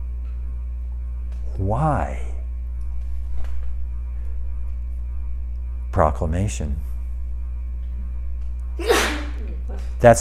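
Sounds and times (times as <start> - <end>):
low hum: 0.0 - 10.1
speech: 1.6 - 2.3, 6.0 - 6.9, 9.8 - 10.1
sneeze: 8.8 - 9.4.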